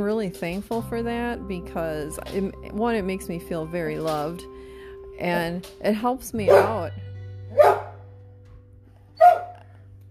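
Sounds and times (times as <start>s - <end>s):
speech: 0.0s - 4.6s, 5.2s - 7.7s
dog barking: 6.5s - 6.8s, 7.5s - 8.0s, 9.2s - 9.6s.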